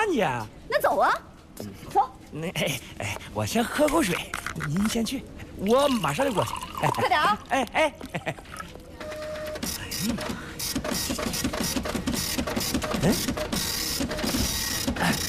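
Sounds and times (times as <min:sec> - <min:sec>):
speech: 0:00.0 - 0:08.6, 0:10.0 - 0:11.9, 0:12.6 - 0:13.7
printer printing a document: 0:08.9 - 0:15.2.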